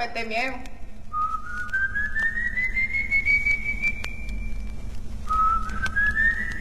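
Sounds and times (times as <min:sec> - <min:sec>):
speech: 0:00.0 - 0:00.8
low steady rumble: 0:00.0 - 0:06.5
eerie high-pitched whistle: 0:01.1 - 0:06.5.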